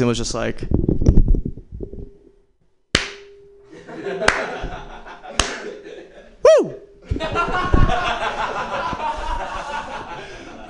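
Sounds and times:
speech: 0.0 - 1.2
single person clapping hands: 3.0 - 3.3, 4.2 - 4.6, 5.4 - 5.7
laughter: 3.7 - 6.4, 7.1 - 10.6.

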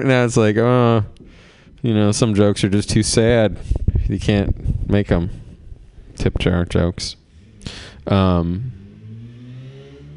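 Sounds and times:
speech: 0.0 - 5.4, 6.2 - 8.8
motorized scooter or motorcycle passing: 8.6 - 10.1.

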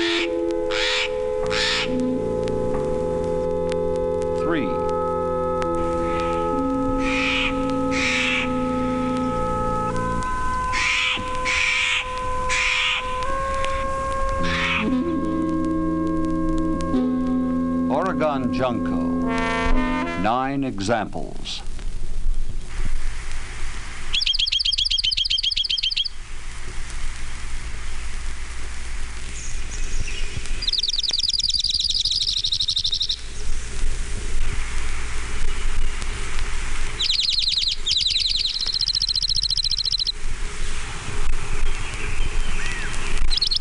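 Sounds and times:
orange-crowned warbler singing trilled songs: 0.0 - 15.6, 24.1 - 26.2, 29.3 - 33.6, 36.9 - 40.8, 41.4 - 43.5
rain-like noise: 0.0 - 43.5
speech: 18.6 - 19.1, 20.2 - 21.7.

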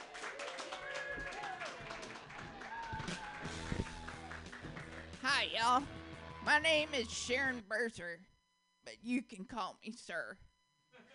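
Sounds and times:
scattered voices and cheers of a comedy festival audience: 0.0 - 4.6, 5.9 - 7.6
audience at a comedy festival clapping: 0.0 - 5.8
speech: 5.4 - 8.3, 8.9 - 10.5.

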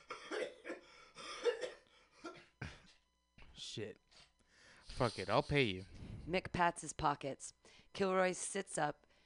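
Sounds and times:
man coughing fit while smoking a cigarette: 0.0 - 3.0
speech: 3.7 - 4.3, 5.0 - 9.1.

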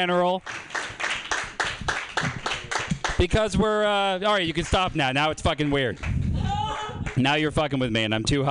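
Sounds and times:
speech: 0.0 - 0.8, 3.2 - 6.1, 7.2 - 8.4
audience clapping in a steady rhythm: 0.4 - 3.6, 4.3 - 7.6.

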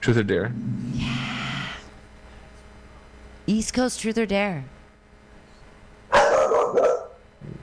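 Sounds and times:
speech: 0.0 - 1.1, 3.5 - 4.8
dogs barking: 6.1 - 7.2.

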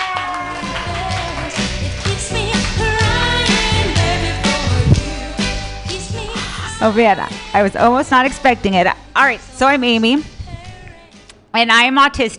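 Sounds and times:
crowd applauding and cheering: 0.0 - 4.8
speech: 6.8 - 10.3, 11.6 - 12.3.

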